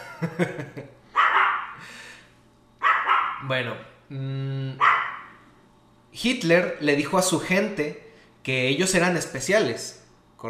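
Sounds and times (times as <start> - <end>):
laughter: 0.0 - 0.9
low hum: 0.0 - 10.4
speech: 0.2 - 1.0, 3.4 - 4.9, 6.1 - 10.4
dogs barking: 1.1 - 1.8, 2.8 - 3.5, 4.8 - 5.5.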